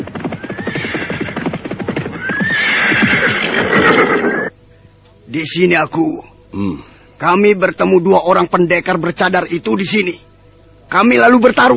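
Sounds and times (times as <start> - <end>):
horses galloping at night: 0.0 - 4.3
high horse whinnies: 0.2 - 4.5
speech: 5.3 - 10.2, 10.9 - 11.7.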